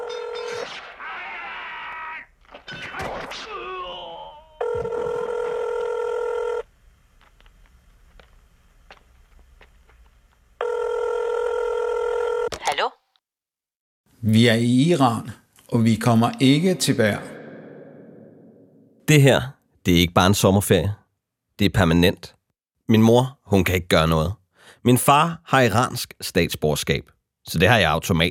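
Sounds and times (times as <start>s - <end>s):
telephone ringing on an outgoing call from a basement in Tehran: 0.0s - 0.6s, 4.6s - 6.7s, 10.6s - 12.5s
speech: 14.3s - 17.3s, 19.1s - 21.0s, 21.6s - 28.3s.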